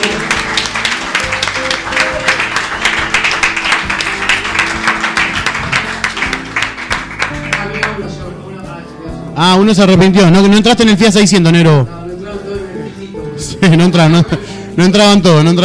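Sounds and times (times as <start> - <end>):
audience applause for a band at an acoustic concert: 0.0 - 8.0
speech: 9.4 - 12.0, 13.6 - 15.6.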